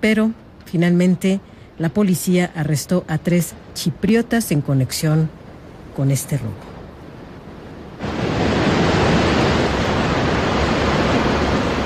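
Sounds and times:
speech: 0.0s - 5.4s, 6.0s - 6.7s
sea waves roaring: 2.4s - 11.8s.

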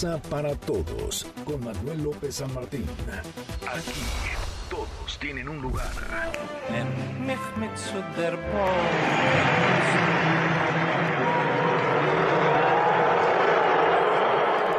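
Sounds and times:
speech: 0.0s - 10.8s
large stadium crowd booing and shouting at World Series game: 8.6s - 14.7s.

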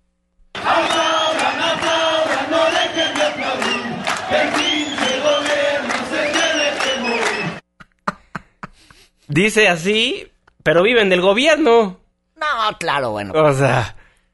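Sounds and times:
large crowd of protesting teachers chanting while marching: 0.6s - 7.6s
speech: 9.3s - 12.0s, 12.7s - 14.0s.

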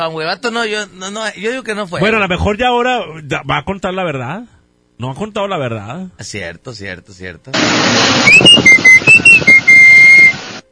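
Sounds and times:
speech: 0.0s - 8.8s
constant rushing noise: 7.6s - 10.6s
person whistling: 8.2s - 10.4s.

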